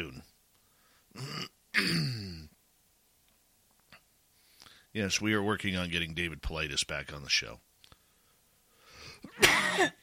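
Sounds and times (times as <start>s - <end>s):
speech: 0.0s - 0.3s, 1.2s - 2.4s, 5.0s - 7.7s, 9.2s - 10.0s
man coughing: 1.2s - 2.5s, 9.2s - 10.0s.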